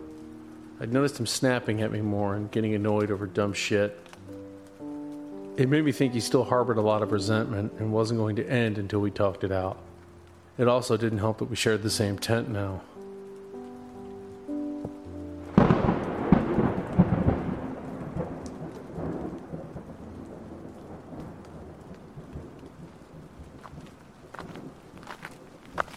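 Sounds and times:
steady rain pattering during a thunderstorm: 0.0 - 25.9
speech: 0.8 - 4.4, 5.6 - 9.9, 10.6 - 13.0
thunder crack rumbling during a thunderstorm: 15.4 - 23.8.

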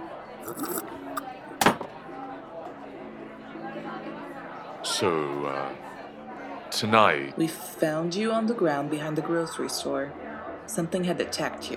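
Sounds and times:
murmur of voices: 0.0 - 11.7
drinking glasses clinking in a toast: 0.4 - 1.2
speech: 0.5 - 1.4, 4.9 - 5.9, 6.7 - 11.7.

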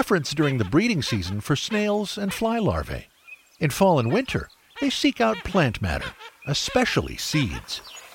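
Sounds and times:
speech: 0.0 - 8.0
Blue-winged Teal nasal quacking calls: 0.3 - 2.7, 4.8 - 7.8.

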